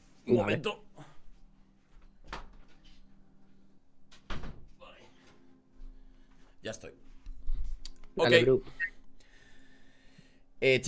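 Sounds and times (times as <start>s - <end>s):
speech: 0.3s - 0.9s, 6.7s - 7.1s, 8.2s - 8.9s, 10.6s - 10.8s
door being shut indoors: 4.2s - 4.7s.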